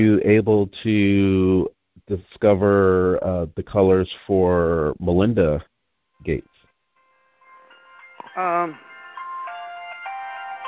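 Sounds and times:
speech: 0:00.0 - 0:06.5, 0:08.4 - 0:08.9
phone ringtone for an incoming call with bright electronic melody: 0:07.0 - 0:10.6.

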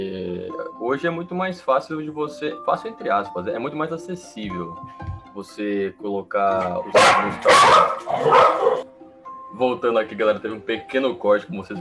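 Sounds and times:
speech: 0:00.0 - 0:08.9, 0:09.6 - 0:11.7
dog barking: 0:06.9 - 0:08.8.

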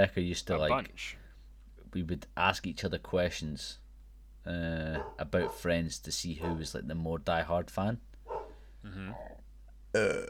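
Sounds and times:
speech: 0:00.0 - 0:01.2, 0:01.9 - 0:03.8, 0:04.4 - 0:08.1, 0:08.8 - 0:09.3, 0:09.9 - 0:10.2
man burping: 0:08.8 - 0:10.2.

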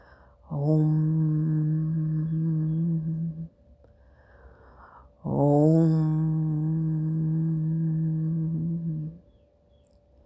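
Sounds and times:
voice chanting Om: 0:00.0 - 0:03.6, 0:05.0 - 0:09.4.

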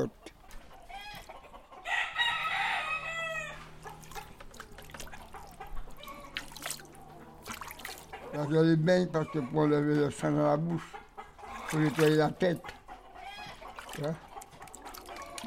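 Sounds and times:
speech: 0:00.0 - 0:00.3, 0:08.4 - 0:11.0, 0:11.7 - 0:12.8, 0:14.0 - 0:14.3
scattered clucks: 0:00.0 - 0:02.6, 0:03.4 - 0:15.4
rooster crowing loudly: 0:01.8 - 0:04.0
splashing: 0:03.7 - 0:08.4, 0:11.3 - 0:15.4.

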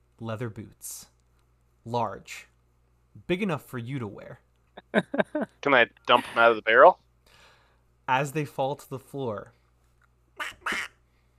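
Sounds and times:
speech: 0:00.2 - 0:01.1, 0:01.8 - 0:02.5, 0:03.2 - 0:07.0, 0:08.1 - 0:09.6
person imitating duck quacks: 0:10.4 - 0:11.0.

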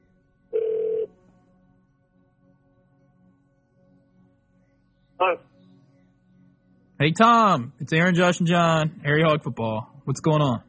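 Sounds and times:
electronic telephone ring tone over a phone line: 0:00.6 - 0:01.1
speech: 0:05.2 - 0:05.5, 0:07.0 - 0:10.6.

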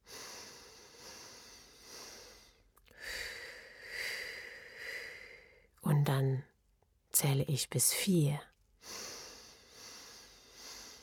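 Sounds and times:
slow breathing in and out during a guided counting exercise: 0:00.0 - 0:05.7, 0:08.8 - 0:11.0
speech: 0:07.3 - 0:08.5.

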